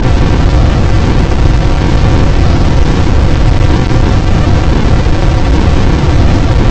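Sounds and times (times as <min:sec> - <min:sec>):
storm: 0:00.0 - 0:06.6.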